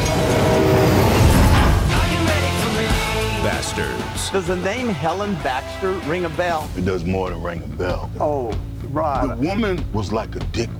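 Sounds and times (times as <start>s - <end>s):
train passing near a car on a railroad track: 0.0s - 8.4s
speech: 4.3s - 10.7s.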